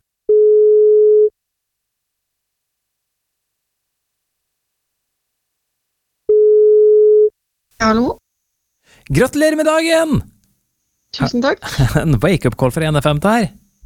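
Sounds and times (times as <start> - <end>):
telephone ringback tone while calling a woman on her birthday: 0.3 - 1.3, 6.3 - 7.3
speech: 7.8 - 8.2, 9.0 - 10.3, 11.1 - 13.8.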